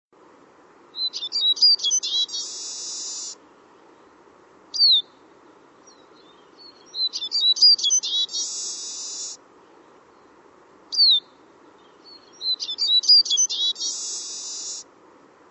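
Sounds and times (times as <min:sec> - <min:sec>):
bird calling: 0:01.0 - 0:03.4, 0:04.7 - 0:05.2, 0:05.8 - 0:09.4, 0:10.9 - 0:14.8.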